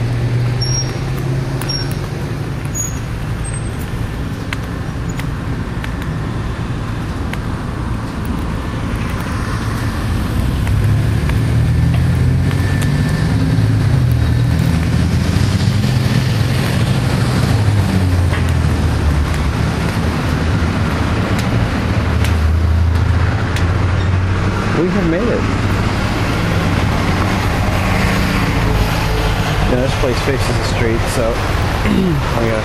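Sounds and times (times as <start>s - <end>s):
passing vehicles rumbling on a street: 0.0s - 32.6s.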